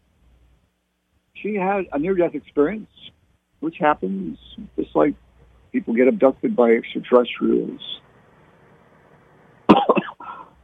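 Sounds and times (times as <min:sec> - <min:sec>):
speech: 0:01.4 - 0:08.0
person coughing: 0:09.7 - 0:10.6.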